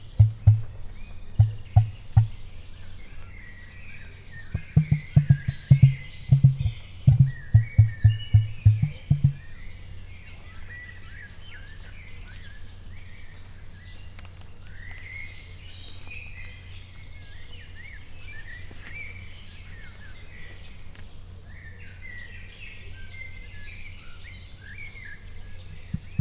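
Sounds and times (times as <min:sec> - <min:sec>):
emu calling in a zoo: 0:00.0 - 0:02.5, 0:04.5 - 0:09.5, 0:25.8 - 0:26.1.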